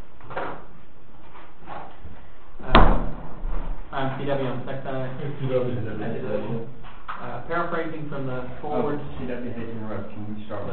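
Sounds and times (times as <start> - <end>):
door pushed shut with a solid thud: 2.6 - 3.8
speech: 4.2 - 6.8, 7.4 - 10.7.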